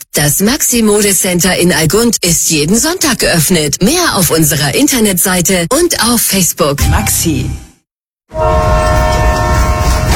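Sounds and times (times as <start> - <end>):
speech: 0.2 - 7.7
railway train horn multi-tone chord: 8.3 - 10.1.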